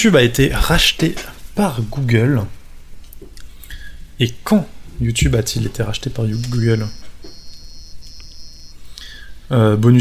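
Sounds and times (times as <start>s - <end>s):
speech: 0.0s - 2.6s, 4.2s - 7.1s, 9.5s - 9.9s
low hum: 0.0s - 9.9s
brief chirpy beep: 6.3s - 8.8s
high electronic quiz-game buzzer tone: 6.3s - 8.8s.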